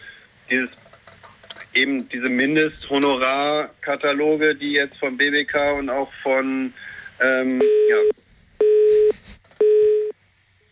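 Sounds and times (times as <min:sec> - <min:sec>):
speech: 0:00.5 - 0:00.9, 0:01.8 - 0:08.1
telephone busy tone after a call is cut off: 0:07.6 - 0:10.1.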